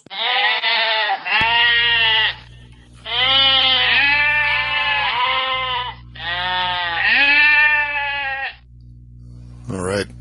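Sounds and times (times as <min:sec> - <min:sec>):
goats bleating: 0:00.0 - 0:08.6
low steady hum: 0:01.4 - 0:10.1.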